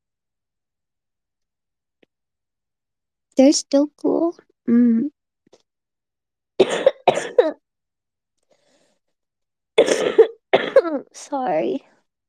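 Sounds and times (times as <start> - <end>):
speech: 3.4 - 5.2, 6.6 - 7.6, 11.2 - 11.9
harsh breathy coughing: 6.6 - 7.6, 9.8 - 11.0.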